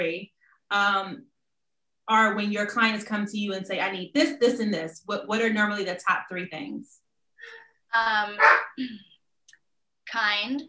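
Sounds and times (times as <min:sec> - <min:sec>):
speech: 0:00.0 - 0:01.3, 0:02.1 - 0:09.1, 0:10.1 - 0:10.6
dog barking at its treats: 0:08.4 - 0:08.8.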